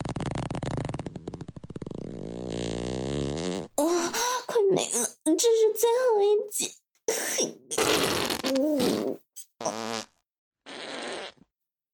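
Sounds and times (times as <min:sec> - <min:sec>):
loud farts: 0:00.0 - 0:03.8, 0:07.7 - 0:11.5
speech: 0:03.8 - 0:06.8.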